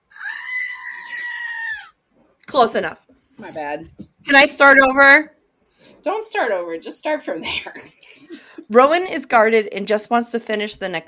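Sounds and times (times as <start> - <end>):
goat-like animal scream: 0.1 - 2.0
speech: 2.6 - 5.4, 6.0 - 11.0.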